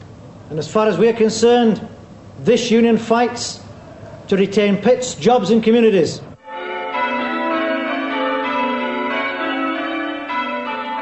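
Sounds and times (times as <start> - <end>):
speech: 0.5 - 3.6, 4.3 - 6.3
church bells ringing in an overlapping peal: 6.4 - 11.0.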